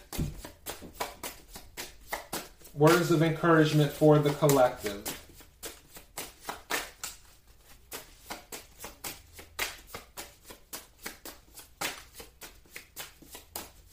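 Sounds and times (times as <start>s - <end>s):
deck of playing cards shuffling: 0.0s - 13.9s
speech: 2.8s - 5.1s.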